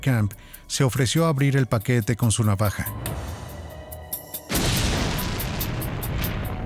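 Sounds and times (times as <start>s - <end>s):
speech: 0.0s - 3.3s
sudden loud explosion boom: 4.5s - 6.6s.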